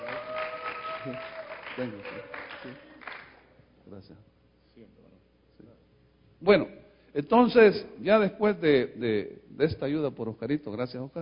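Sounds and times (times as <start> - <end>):
audience applauding: 0.0 - 3.4
speech: 1.0 - 2.9, 3.9 - 5.8, 6.4 - 11.2.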